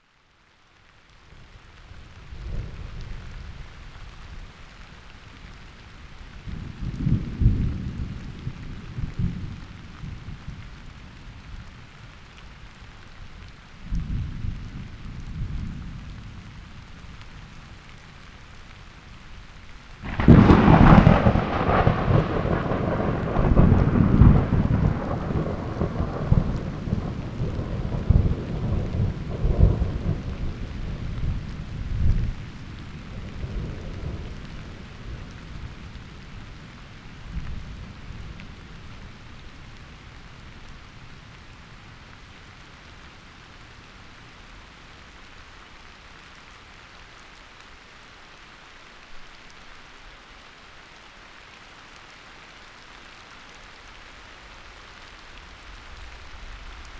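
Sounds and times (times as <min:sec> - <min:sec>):
rain in a cave: 0:00.0 - 0:56.9
thunder in a cave: 0:06.6 - 0:09.7, 0:20.0 - 0:35.9.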